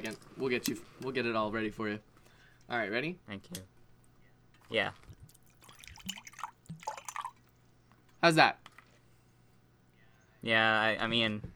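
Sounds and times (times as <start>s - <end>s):
speech: 0.0s - 2.1s, 2.7s - 3.8s, 4.7s - 5.1s, 8.2s - 8.7s, 10.4s - 11.5s
water poured onto a person's hair and spattering: 5.3s - 7.5s.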